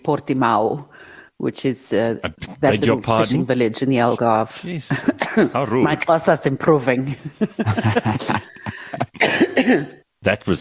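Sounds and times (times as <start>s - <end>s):
speech: 0.0s - 8.5s, 9.6s - 10.5s
laughter: 7.1s - 9.2s
person coughing: 8.2s - 10.0s.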